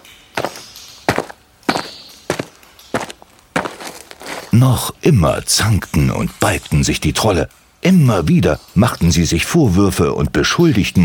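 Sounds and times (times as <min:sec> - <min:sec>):
slow cautious footsteps leaving a cave: 0:00.0 - 0:04.6
speech: 0:04.6 - 0:11.0.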